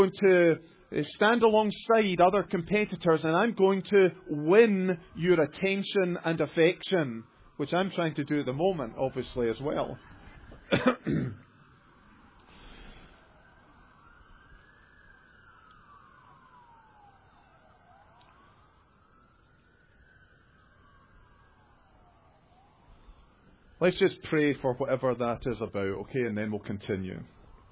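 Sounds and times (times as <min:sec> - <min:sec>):
speech: 0:00.0 - 0:10.1, 0:10.7 - 0:11.4, 0:23.8 - 0:27.4
emergency vehicle siren wailing outside: 0:00.0 - 0:27.7
person coughing: 0:10.6 - 0:11.5.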